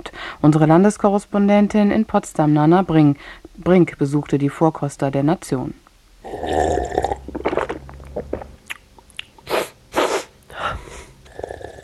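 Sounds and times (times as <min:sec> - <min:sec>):
speech: 0:00.4 - 0:06.9
aroma researchers slurping while tasting food: 0:06.3 - 0:10.3
aroma researchers lip-smacking and chewing while tasting food: 0:07.2 - 0:09.6
aroma researchers sniffing while tasting food: 0:09.4 - 0:11.2.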